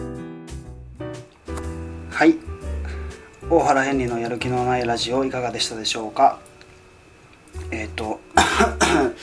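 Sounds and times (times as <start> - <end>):
speech: 2.2 - 2.5, 3.5 - 6.5, 7.7 - 9.2
person coughing with throat-clearing rasp: 8.4 - 9.2.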